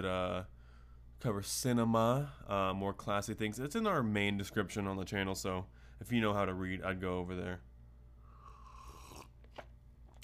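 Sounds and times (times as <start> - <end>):
speech: 0.0 - 0.6, 1.2 - 7.7
person slurping tea: 8.3 - 9.4
faint swallowing: 8.3 - 9.6.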